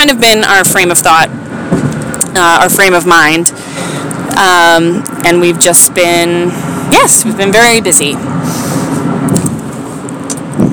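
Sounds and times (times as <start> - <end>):
speech: 0.0 - 1.8, 2.4 - 3.6, 4.3 - 8.8
road and engine noise inside a moving car: 0.0 - 10.7.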